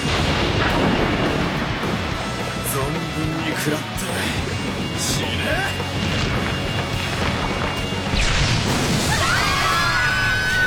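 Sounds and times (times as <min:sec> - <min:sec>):
big explosion: 0:00.0 - 0:02.4, 0:06.0 - 0:10.6
speech: 0:03.6 - 0:06.3.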